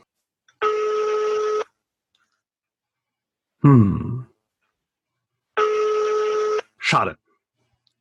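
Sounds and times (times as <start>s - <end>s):
outgoing phone call ringing tone from a smartwatch: 0.6s - 1.7s, 5.6s - 6.7s
speech: 3.6s - 4.1s, 6.9s - 7.2s
person murmuring a brief hum: 3.6s - 4.3s.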